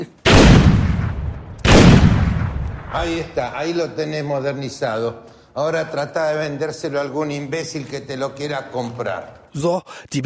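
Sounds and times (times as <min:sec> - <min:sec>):
pistol shots fired into paintings in a gallery: 0:00.2 - 0:03.2
speech: 0:02.9 - 0:10.2.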